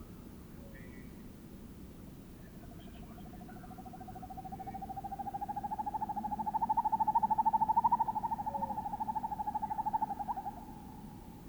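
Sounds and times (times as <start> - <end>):
low background hiss: 0.0 - 11.4
two male Northern hawk-owls giving trilled hoots: 5.4 - 11.2.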